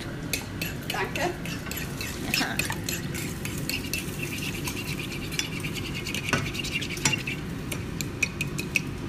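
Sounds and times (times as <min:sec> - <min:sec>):
egg being beaten against a dish: 0:00.2 - 0:09.0
speech: 0:01.0 - 0:01.7.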